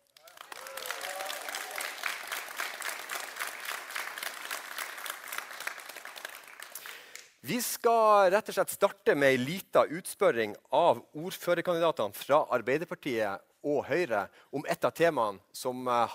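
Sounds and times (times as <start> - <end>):
audience in a hall at an evening local election debate applauding: 0.0 - 7.4
audience in a hall at an evening local election debate cheering and whooping: 0.2 - 2.3
speech: 7.5 - 16.1.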